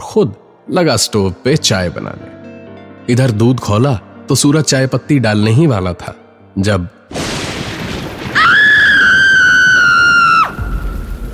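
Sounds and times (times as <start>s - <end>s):
speech: 0.2s - 2.3s, 3.1s - 7.3s
rain: 7.1s - 11.3s
thunder rumble: 7.1s - 11.3s
woman screaming: 8.4s - 10.9s.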